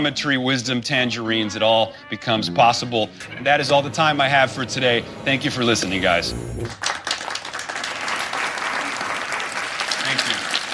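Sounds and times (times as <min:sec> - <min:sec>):
speech: 0:00.0 - 0:07.0
dozens of people standing and applauding a speech: 0:06.6 - 0:10.7.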